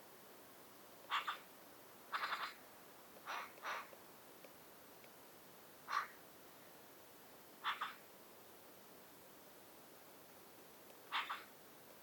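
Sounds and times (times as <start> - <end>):
quiet hiss: 0.0 - 12.0
Eurasian magpie scratchy calls: 1.1 - 1.5, 2.1 - 2.6, 3.2 - 3.9, 5.8 - 6.2, 7.6 - 8.0, 11.1 - 11.5.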